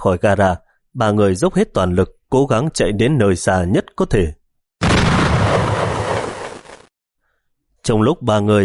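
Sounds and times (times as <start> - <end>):
speech: 0.0 - 4.4, 7.8 - 8.6
bomb explosion inside a parking garage: 4.8 - 6.9.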